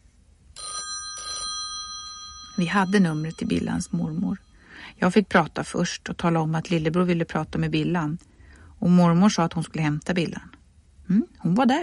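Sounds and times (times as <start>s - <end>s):
telephone bell ringing: 0.6s - 4.7s
speech: 2.6s - 10.5s, 11.1s - 11.8s.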